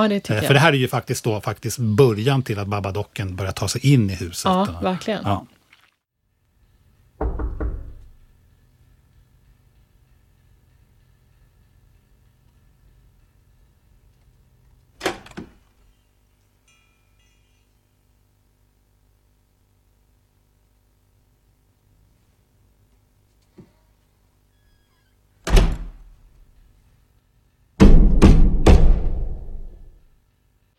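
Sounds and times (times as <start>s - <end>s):
speech: 0.0s - 5.6s
ominous heavy booming knocks on a door: 7.2s - 8.3s, 27.8s - 29.7s.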